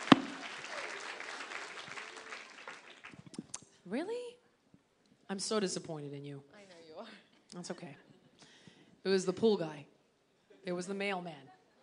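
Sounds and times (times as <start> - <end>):
light applause from a small group: 0.0 - 3.6
speech: 3.9 - 4.4, 5.3 - 8.1, 9.0 - 9.9, 10.6 - 11.5.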